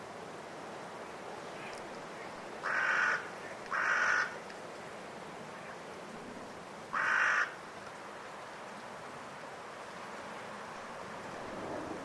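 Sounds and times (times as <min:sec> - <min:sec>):
soft wind noise from blustery force 6 wind: 0:00.0 - 0:12.0
Carrion crow calling rasping caws before roosting: 0:02.6 - 0:04.4, 0:06.9 - 0:07.6.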